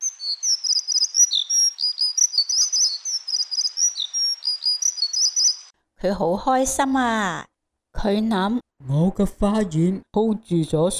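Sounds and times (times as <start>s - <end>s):
small birds singing in a garden: 0.0s - 5.8s
speech: 0.3s - 0.8s, 6.0s - 10.9s.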